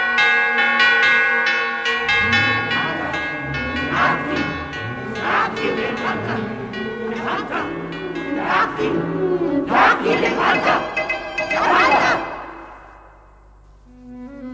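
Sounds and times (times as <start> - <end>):
loud bell tolling: 0.0 - 13.5
indistinct voices murmuring and crying out: 2.0 - 12.5.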